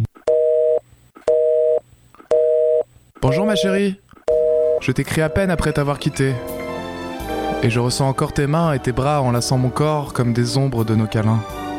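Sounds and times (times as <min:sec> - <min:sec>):
electronic answering machine beep tones on a phone line: 0:00.3 - 0:06.1
speech: 0:03.2 - 0:04.0, 0:04.8 - 0:06.7, 0:07.6 - 0:11.6.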